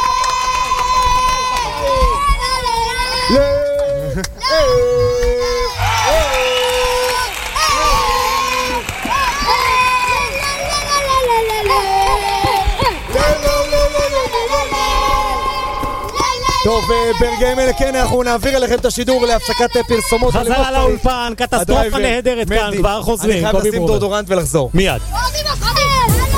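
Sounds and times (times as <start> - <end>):
audience applause: 0.0 - 2.4, 5.8 - 16.8
audience cheering, shouting and whooping: 0.0 - 17.4
speech: 3.3 - 3.5, 16.7 - 25.6.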